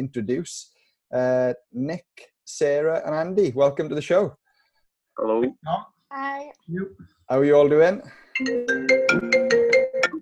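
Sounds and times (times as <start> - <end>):
speech: 0.0 - 4.4, 5.2 - 9.6
mobile phone ringtone with synthesized tune: 8.4 - 10.2.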